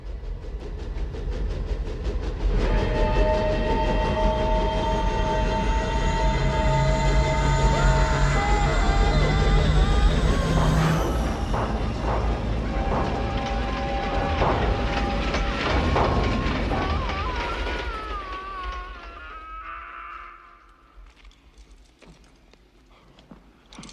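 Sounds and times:
old passenger train locomotive rumbling through a tunnel: 0.0s - 23.9s.

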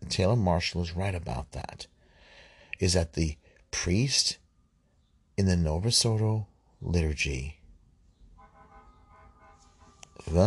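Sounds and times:
speech: 0.1s - 2.0s, 2.8s - 4.4s, 5.4s - 7.6s, 10.2s - 10.4s
fire truck horn outside: 8.4s - 10.2s.

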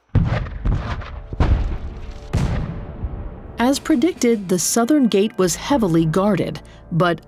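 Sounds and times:
heavy 12-pounder assault cannon blasts: 0.0s - 4.3s
speech: 3.7s - 7.2s.

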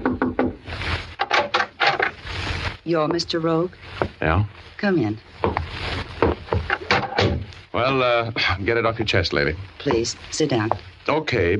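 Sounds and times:
knocking on a wooden cabin door: 0.0s - 0.6s, 6.2s - 7.5s
rustling: 0.6s - 7.9s, 8.6s - 11.5s
speech: 2.9s - 6.0s, 7.8s - 11.5s.

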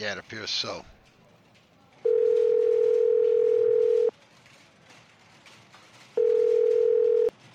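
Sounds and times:
speech: 0.0s - 1.0s
telephone dial tone: 2.0s - 4.1s, 6.2s - 7.3s.

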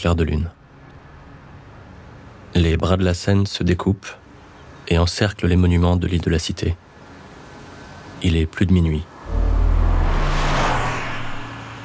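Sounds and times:
speech: 0.0s - 0.6s, 2.5s - 4.2s, 4.9s - 6.9s, 8.2s - 9.4s
car speeding past Notre-Dame de Paris in Paris: 9.2s - 11.8s.

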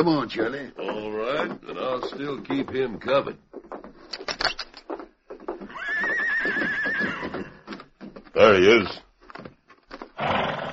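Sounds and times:
speech: 0.0s - 3.5s, 8.4s - 9.0s
stallion hoof clops: 0.0s - 10.7s
stallion whinnying: 5.5s - 7.8s, 10.2s - 10.7s.

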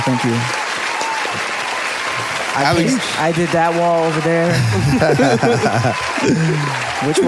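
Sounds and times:
speech: 0.0s - 0.6s, 2.2s - 7.2s
small crowd clapping: 0.0s - 7.2s
laughter: 2.6s - 3.2s, 4.5s - 7.2s.

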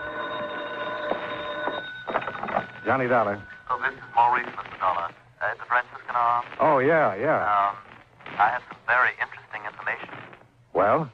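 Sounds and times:
telephone bell ringing: 0.0s - 4.5s
speech: 2.9s - 9.3s, 10.8s - 11.1s.

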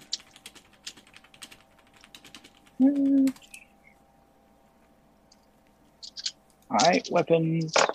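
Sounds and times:
speech: 2.8s - 3.4s, 6.8s - 7.9s
dice gathered and tossed to roll damage: 6.1s - 7.9s.

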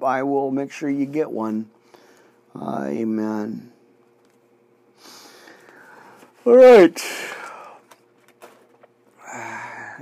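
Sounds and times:
speech: 0.0s - 1.8s, 2.6s - 3.7s, 6.4s - 7.4s
breathy yawn: 9.2s - 10.0s.

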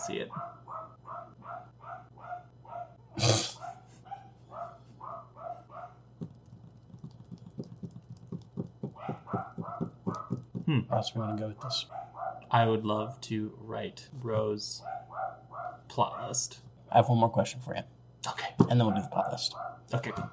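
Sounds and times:
speech: 0.0s - 2.1s, 10.7s - 15.0s, 15.9s - 20.3s
dogs barking in sharp yaps: 0.3s - 6.1s, 8.9s - 10.5s, 11.2s - 12.5s, 14.8s - 16.4s, 18.6s - 20.3s
clicking and tapping: 6.2s - 10.7s.

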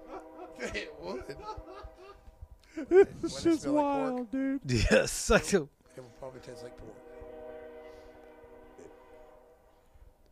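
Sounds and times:
passing train horn blaring: 0.0s - 2.3s, 5.9s - 10.2s
laughter: 0.0s - 3.8s
speech: 0.6s - 7.1s.

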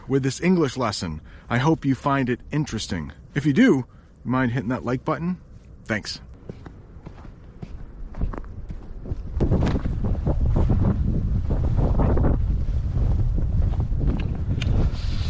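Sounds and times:
speech: 0.1s - 6.3s
wind blowing outdoors and buffeting the microphone: 6.8s - 15.2s.

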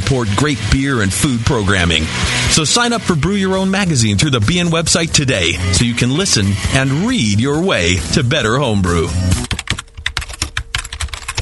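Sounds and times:
speech: 0.1s - 9.5s
rapid typing on a computer keyboard while writing an online review: 9.4s - 11.4s.

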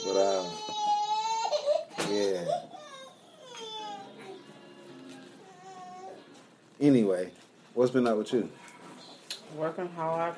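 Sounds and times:
baby boy crying and fussing for his pacifier: 0.0s - 4.5s, 5.4s - 6.3s
speech: 6.8s - 8.7s, 9.6s - 10.3s.

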